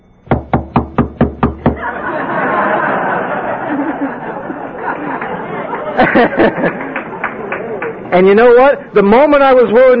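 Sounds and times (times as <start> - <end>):
knocking on a door: 0.3 - 1.8
audience chatter and laughter: 1.7 - 8.9
speech: 6.2 - 6.8, 8.1 - 9.9.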